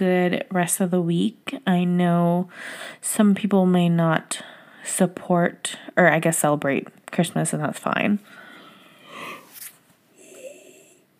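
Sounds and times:
speech: 0:00.0 - 0:08.4
person yawning: 0:09.0 - 0:09.5, 0:10.2 - 0:11.0.

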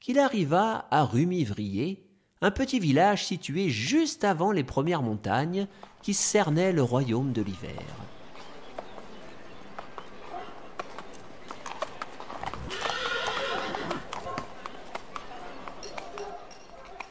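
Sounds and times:
speech: 0:00.0 - 0:08.2
horse hooves clip-clopping: 0:05.7 - 0:06.6, 0:07.2 - 0:17.0.

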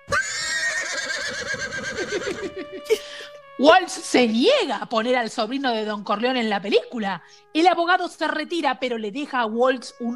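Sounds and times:
horse neighing: 0:00.0 - 0:02.8
laughter: 0:02.0 - 0:03.3
speech: 0:02.1 - 0:10.1.

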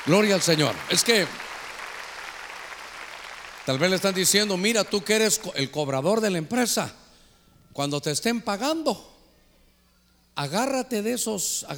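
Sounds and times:
speech: 0:00.0 - 0:01.5, 0:03.7 - 0:07.0, 0:07.7 - 0:09.1, 0:10.4 - 0:11.7
congregation clapping loudly: 0:00.0 - 0:05.4.

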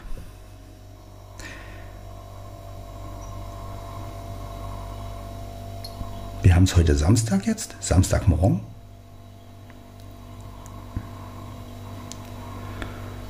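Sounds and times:
refrigerator humming: 0:00.0 - 0:13.2
speech: 0:06.4 - 0:08.7.

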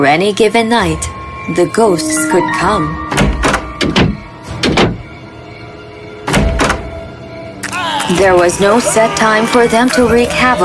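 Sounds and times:
speech: 0:00.0 - 0:03.2, 0:03.8 - 0:04.0, 0:08.1 - 0:10.6
heavy wooden thunks: 0:03.2 - 0:05.1.

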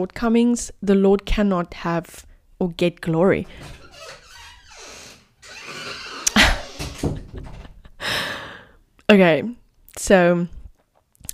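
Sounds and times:
speech: 0:00.0 - 0:04.2, 0:09.1 - 0:10.6
door opening with a thunk and creaking, rattling sweep: 0:03.3 - 0:07.9.

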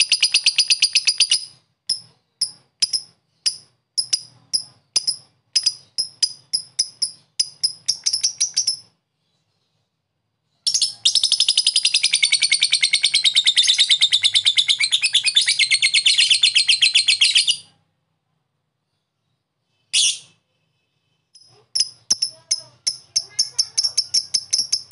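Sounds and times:
lovebird piercing high chips and shrill chattering rattle: 0:00.0 - 0:09.0, 0:10.7 - 0:17.7, 0:21.4 - 0:24.9.

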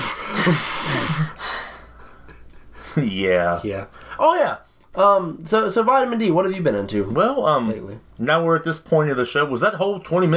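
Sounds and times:
person imitating heavy exhausted panting: 0:00.0 - 0:03.0
speech: 0:00.4 - 0:01.6, 0:03.0 - 0:10.3.

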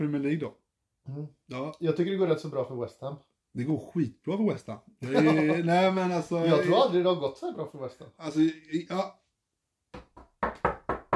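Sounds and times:
speech: 0:00.0 - 0:09.2
laughter: 0:05.0 - 0:06.0
knocking on a wooden surface for luck: 0:09.9 - 0:11.1.

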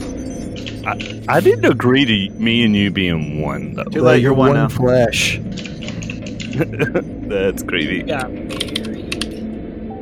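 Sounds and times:
low steady hum: 0:00.0 - 0:10.0
speech: 0:00.8 - 0:05.7, 0:06.6 - 0:08.8
laughter: 0:06.4 - 0:07.7
typing on a computer keyboard while making a diagram: 0:08.5 - 0:09.3.

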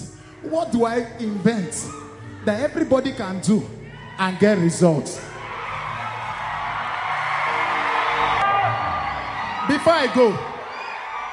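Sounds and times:
speech: 0:00.5 - 0:05.3, 0:09.8 - 0:10.5
large church crowd shouting and whooping: 0:01.2 - 0:02.7, 0:03.8 - 0:11.3.

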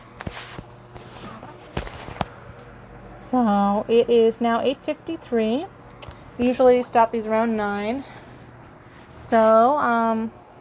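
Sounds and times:
soft light pattering footsteps: 0:00.0 - 0:02.8
speech: 0:03.3 - 0:05.8, 0:06.4 - 0:08.1, 0:09.2 - 0:10.4.

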